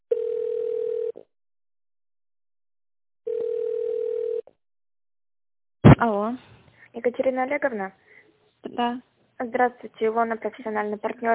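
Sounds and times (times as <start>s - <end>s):
steady mid-pitched telephone tone while a call is transferred: 0.1s - 1.3s, 3.3s - 4.5s
speech: 6.0s - 11.3s.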